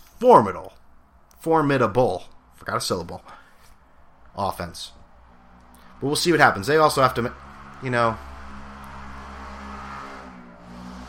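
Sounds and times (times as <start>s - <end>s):
speech: 0.2s - 0.7s, 1.4s - 3.4s, 4.4s - 5.0s, 6.0s - 8.3s
small moped engine droning with buzzy harmonic hum outside: 5.1s - 11.0s.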